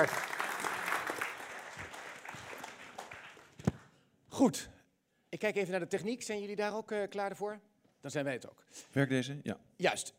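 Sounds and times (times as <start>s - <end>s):
speech: 0.0s - 0.3s, 4.4s - 10.1s
audience applauding: 0.0s - 3.9s.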